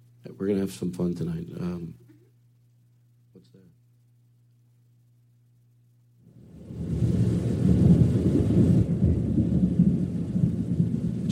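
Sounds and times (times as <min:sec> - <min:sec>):
speech: 0:00.3 - 0:02.0
rain hissing in a storm: 0:06.3 - 0:11.3
thunder rolling in a rainy storm: 0:06.3 - 0:11.3.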